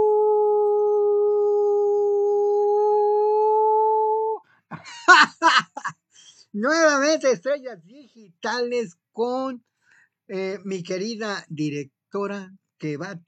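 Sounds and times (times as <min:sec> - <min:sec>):
person imitating a howl: 0:00.0 - 0:04.4
speech: 0:06.6 - 0:09.7, 0:10.3 - 0:13.2.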